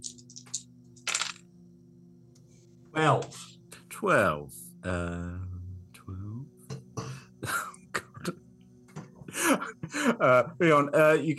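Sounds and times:
dice clattering on a hard tabletop: 0.0s - 1.5s
steady low hum: 0.0s - 11.0s
speech: 3.0s - 5.4s, 10.2s - 11.3s.

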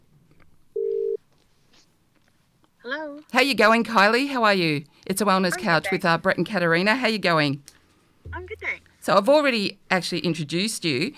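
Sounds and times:
telephone ringing tone: 0.8s - 1.2s
speech: 2.8s - 11.1s.

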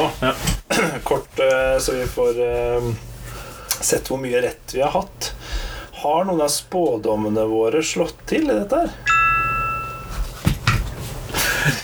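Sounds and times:
speech: 0.1s - 3.1s, 3.8s - 5.4s, 6.0s - 9.1s
bright electronic phone notification chime: 9.0s - 11.4s.

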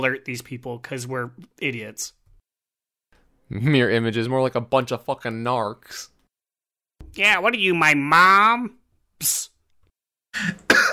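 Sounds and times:
speech: 0.0s - 2.2s, 3.5s - 6.1s, 7.0s - 9.5s, 10.3s - 10.9s
person coughing harshly: 10.4s - 10.9s.

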